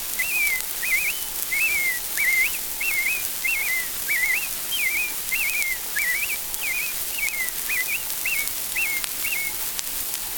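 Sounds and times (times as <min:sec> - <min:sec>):
American robin evening song from a tall tree in the woods: 0:00.0 - 0:10.3
steady background hiss: 0:00.0 - 0:10.3.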